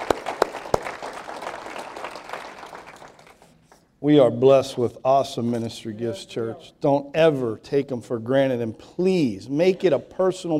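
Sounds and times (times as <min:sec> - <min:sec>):
room full of people applauding: 0:00.0 - 0:03.5
speech: 0:04.0 - 0:10.5.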